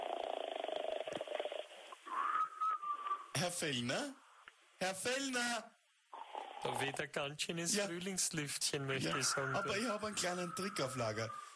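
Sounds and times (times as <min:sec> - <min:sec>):
rapid purring breath: 0:00.0 - 0:02.1
person whistling while asleep: 0:02.3 - 0:03.2
speech: 0:03.4 - 0:04.2, 0:04.8 - 0:05.7, 0:06.6 - 0:11.5.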